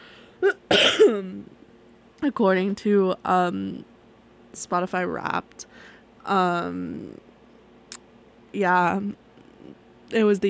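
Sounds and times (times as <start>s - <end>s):
person coughing: 0.4s - 1.3s
speech: 0.7s - 1.6s, 2.2s - 3.9s, 4.5s - 7.3s, 8.5s - 10.4s.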